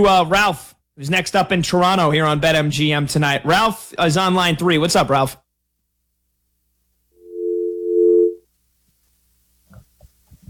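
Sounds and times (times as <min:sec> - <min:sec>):
speech: 0:00.0 - 0:05.4
telephone dial tone after a caller hangs up: 0:07.3 - 0:08.4.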